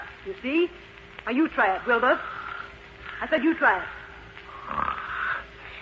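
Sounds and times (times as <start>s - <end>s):
speech: 0.2s - 2.3s, 3.2s - 4.0s
person snoring: 4.5s - 5.8s.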